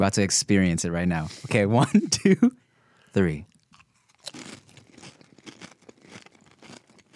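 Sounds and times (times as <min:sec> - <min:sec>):
speech: 0:00.0 - 0:03.5
crunching tortilla chips being chewed: 0:03.1 - 0:07.1.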